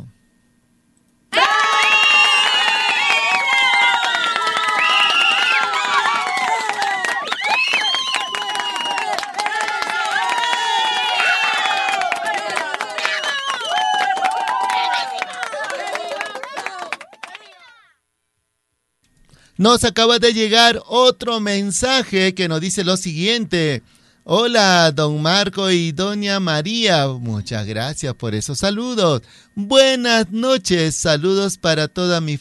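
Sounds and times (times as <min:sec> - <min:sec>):
crowd cheering and shouting excitedly: 0:01.3 - 0:17.8
scattered clapping: 0:01.7 - 0:17.6
speech: 0:19.6 - 0:32.3.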